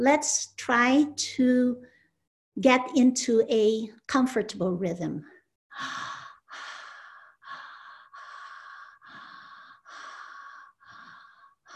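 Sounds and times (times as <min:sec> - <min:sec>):
speech: 0:00.0 - 0:01.9, 0:02.6 - 0:06.1
steady breathing in and out through the mouth: 0:05.7 - 0:11.7.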